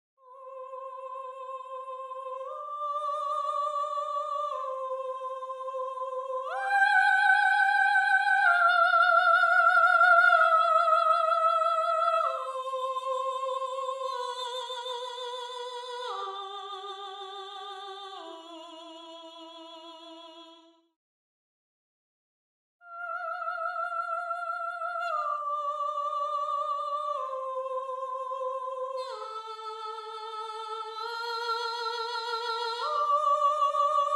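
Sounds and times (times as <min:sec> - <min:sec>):
soprano voice in counterpoint: 0:00.2 - 0:20.7, 0:22.9 - 0:34.1.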